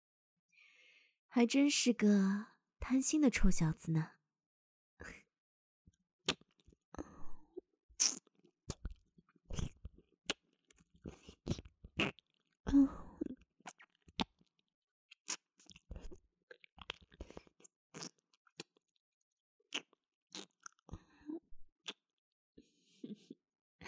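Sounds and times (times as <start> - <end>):
speech: 1.3 - 4.2, 5.0 - 5.2
mouth sounds of nibbling and chewing on an ear: 6.3 - 6.8, 8.0 - 12.5, 15.2 - 18.8, 19.7 - 20.9.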